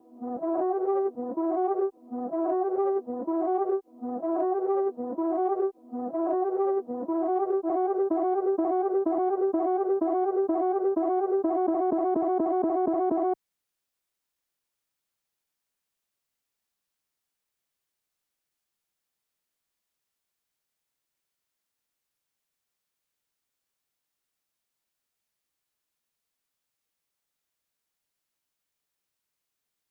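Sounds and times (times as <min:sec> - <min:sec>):
dry melody break in E minor at 126 BPM: 0:00.3 - 0:13.4.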